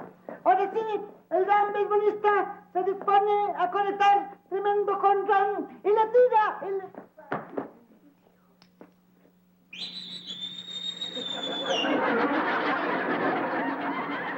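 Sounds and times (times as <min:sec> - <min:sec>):
speech: 0:00.7 - 0:07.1
person whistling at someone: 0:09.8 - 0:11.9
laughter: 0:11.0 - 0:14.3.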